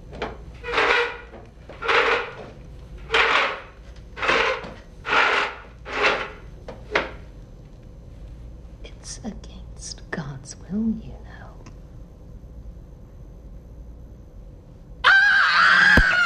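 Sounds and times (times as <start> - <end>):
wooden chair scooting across floor: 0.5 - 7.2
woman screaming: 15.1 - 16.2.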